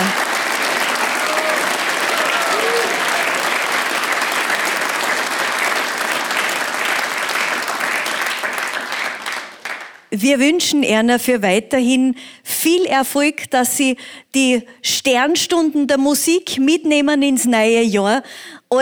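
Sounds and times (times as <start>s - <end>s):
large audience applause: 0.0s - 10.1s
speech: 10.2s - 18.8s.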